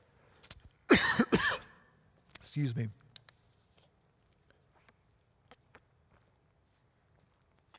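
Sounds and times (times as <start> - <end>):
harsh raspy coughs: 0.9 - 1.8
speech: 2.6 - 3.0.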